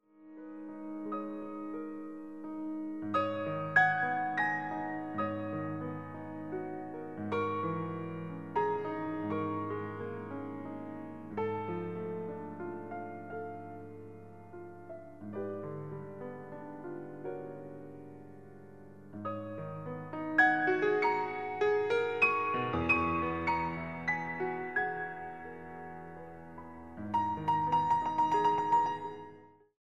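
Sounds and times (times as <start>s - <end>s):
meditation piano music: 0.0s - 29.8s.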